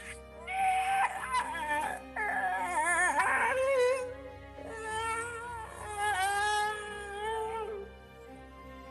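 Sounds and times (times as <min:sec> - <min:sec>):
long wavering dog-like howls: 0:00.0 - 0:07.9.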